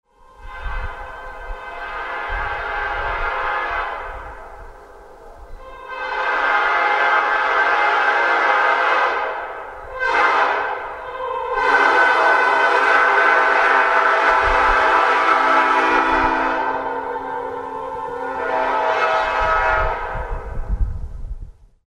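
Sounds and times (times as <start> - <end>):
horns: 0.3 - 4.8, 5.4 - 20.8.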